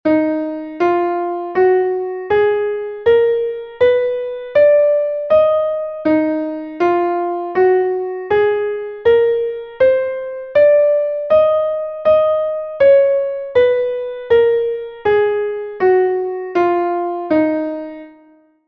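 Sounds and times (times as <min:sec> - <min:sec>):
E flat harmonic minor scale: 0:00.0 - 0:18.6.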